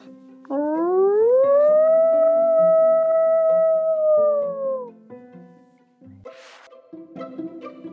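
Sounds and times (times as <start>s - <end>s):
animal howling: 0.5s - 5.0s.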